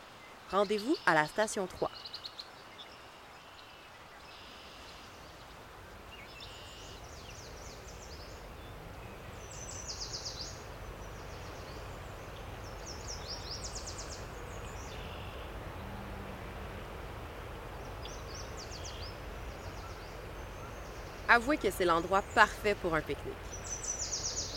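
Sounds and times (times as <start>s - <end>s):
birds singing outdoors: 0.0s - 24.5s
steady broadband noise: 0.0s - 24.5s
speech: 0.5s - 2.2s, 21.4s - 23.5s.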